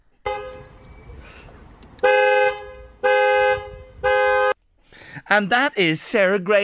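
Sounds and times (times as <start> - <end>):
car horn honking in Dundalk: 0.2 - 1.1, 2.0 - 4.6
speech: 5.3 - 6.6.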